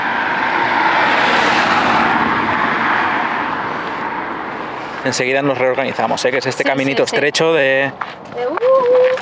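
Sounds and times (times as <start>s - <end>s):
car driving past with engine and tire noise: 0.0s - 6.0s
speech: 5.0s - 9.2s.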